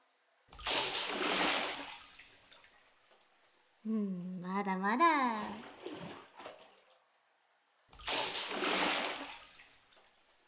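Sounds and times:
water poured to rinse someone off after washing: 0.5s - 3.9s, 5.2s - 7.1s, 7.9s - 10.4s
speech: 3.8s - 6.0s.

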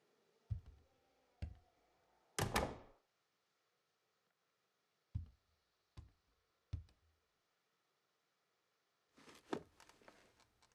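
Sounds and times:
door pulled shut with a sharp clunk: 2.4s - 2.9s
soft rustling: 9.2s - 10.7s.

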